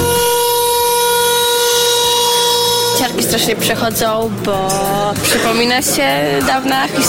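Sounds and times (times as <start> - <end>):
loud siren wailing on a steady tone: 0.0 - 5.1
speech: 3.4 - 7.0.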